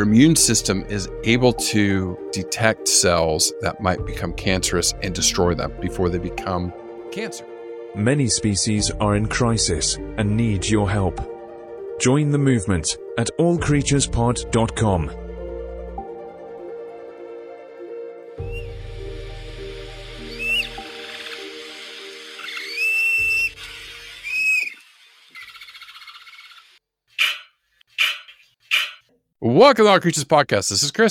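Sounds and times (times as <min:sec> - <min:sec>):
speech: 0:00.0 - 0:11.4, 0:12.0 - 0:15.2, 0:29.6 - 0:31.0
steady music: 0:00.0 - 0:24.4
dogs making high squeaky chirps: 0:25.3 - 0:29.1.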